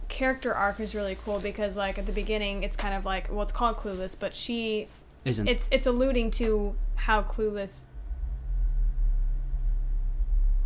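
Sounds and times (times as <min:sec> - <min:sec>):
speech: 0:00.2 - 0:07.9
passing car with deep steady low rumble: 0:05.3 - 0:10.6.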